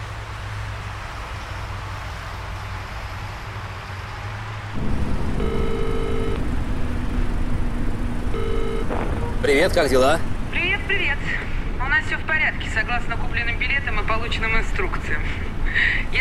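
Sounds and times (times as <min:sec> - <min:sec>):
highway road noise: 0:00.0 - 0:16.1
truck engine rumble driving along a highway: 0:00.0 - 0:16.1
low tonal hum: 0:04.7 - 0:11.9
speech: 0:09.5 - 0:10.3, 0:10.9 - 0:11.4, 0:12.0 - 0:16.1.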